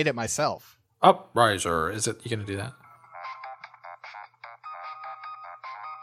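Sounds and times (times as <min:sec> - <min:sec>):
speech: 0:00.0 - 0:02.8
bouncy electronic video game melody as phone ringtone: 0:02.8 - 0:06.0.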